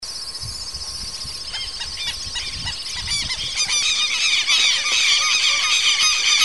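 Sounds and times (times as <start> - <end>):
several southern lapwings calling: 1.4 - 6.4.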